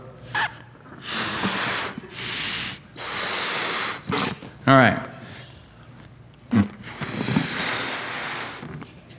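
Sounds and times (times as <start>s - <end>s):
person blowing up a balloon by mouth: 0.2s - 4.7s, 6.5s - 8.9s
quick sharp inhales: 0.2s - 5.8s, 6.7s - 8.8s
speech: 4.7s - 5.1s.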